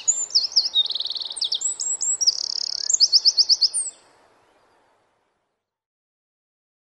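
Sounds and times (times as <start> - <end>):
Eurasian wren song of trills and sharp notes: 0.0 - 5.3.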